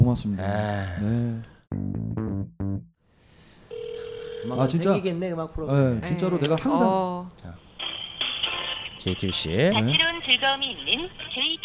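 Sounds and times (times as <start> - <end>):
speech: 0.1 - 2.6, 4.4 - 7.6, 9.0 - 11.6
steady unbroken telephone tone: 3.7 - 4.6.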